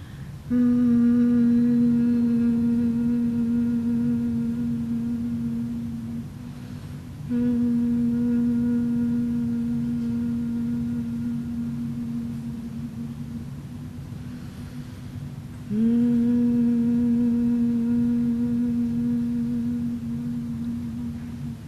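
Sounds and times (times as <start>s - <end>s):
person humming one low pitch as a guided exercise after deep breathing: 0.0s - 13.9s, 15.6s - 21.6s.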